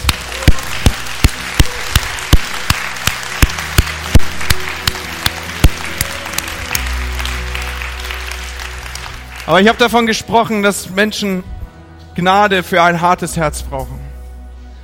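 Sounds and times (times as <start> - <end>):
sharp evenly spaced claps: 0.0 - 9.6
audience applauding: 0.0 - 10.1
speech: 9.5 - 11.5, 12.2 - 14.0.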